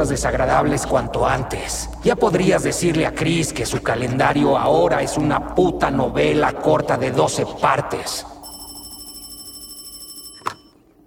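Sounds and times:
speech: 0.0s - 8.4s
telephone ringing with a trilling electronic tone: 8.4s - 10.8s.

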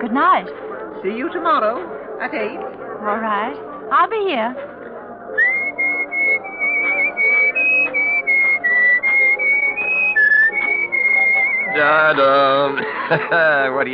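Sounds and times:
speech: 0.0s - 5.5s, 11.8s - 13.9s
woman whistling a tune: 5.4s - 11.8s
laughter: 11.5s - 13.9s.

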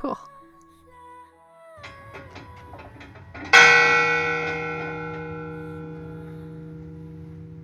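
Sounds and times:
large fog bell clang: 2.3s - 7.6s.

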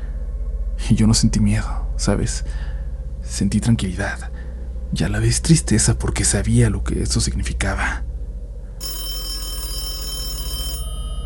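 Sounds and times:
low steady hum: 0.0s - 11.2s
speech: 0.9s - 8.1s
telephone bell ringing: 8.8s - 11.2s.

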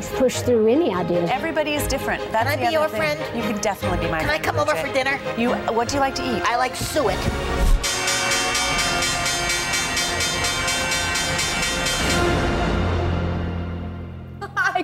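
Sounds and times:
speech: 0.1s - 7.8s
dense din: 6.6s - 14.4s
stock exchange closing bell ringing: 7.9s - 13.5s.

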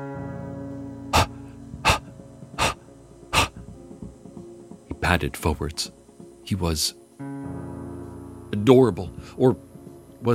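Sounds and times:
beagle puppy panting: 1.2s - 3.7s
speech: 5.1s - 7.0s, 8.7s - 10.3s.

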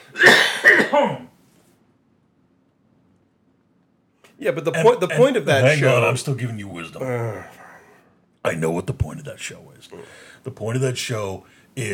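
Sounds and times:
person coughing: 0.0s - 1.4s
speech: 4.4s - 7.6s, 8.4s - 11.9s.

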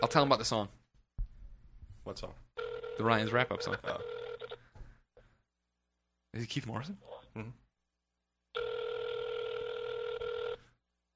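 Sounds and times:
speech: 0.0s - 0.8s, 2.1s - 4.2s, 6.3s - 7.6s
phone ringback tone from an outgoing call: 2.6s - 4.6s, 8.6s - 10.8s.

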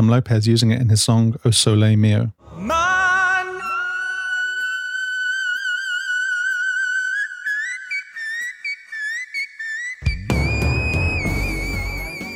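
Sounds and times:
speech: 0.0s - 2.8s
male singer holding a whistle register note: 2.4s - 7.8s
loud dense burst of backing sound: 10.0s - 12.3s.

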